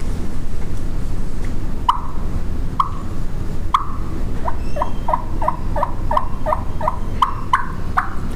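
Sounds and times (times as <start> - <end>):
steady low noise: 0.0 - 8.3
soft turkey clucks and yelps blown on a cutter call: 1.9 - 8.3.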